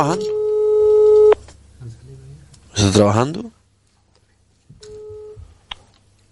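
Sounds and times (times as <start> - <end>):
speech: 0.0 - 0.4, 2.8 - 3.6
outgoing phone call electronic dialing tone: 0.0 - 1.4, 4.8 - 5.4
low hum: 0.0 - 6.3.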